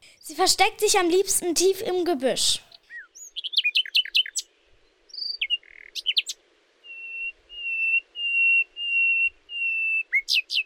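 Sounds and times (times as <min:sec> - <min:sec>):
speech: 0:00.3 - 0:02.7
nightingale singing: 0:02.6 - 0:10.6.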